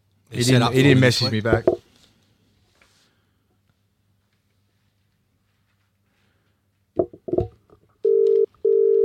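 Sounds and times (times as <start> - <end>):
speech: 0.3 - 1.8
telephone ringback tone beeps: 8.0 - 9.0.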